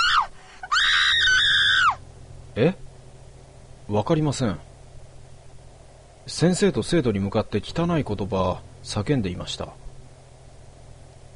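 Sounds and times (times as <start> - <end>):
mother screaming: 0.0 - 2.0
speech: 2.6 - 2.8, 3.9 - 4.7, 6.3 - 9.8.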